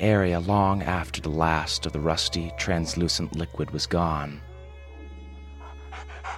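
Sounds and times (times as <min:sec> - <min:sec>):
speech: 0:00.0 - 0:04.5
dog panting in short gasps: 0:05.6 - 0:06.3.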